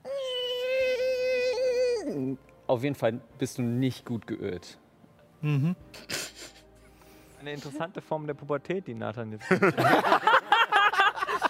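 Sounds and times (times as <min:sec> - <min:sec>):
voice imitating the creaking of a body pushing itself upward: 0:00.0 - 0:02.4
speech: 0:02.7 - 0:04.8, 0:05.4 - 0:06.1, 0:07.4 - 0:10.5
laughter: 0:09.4 - 0:11.4.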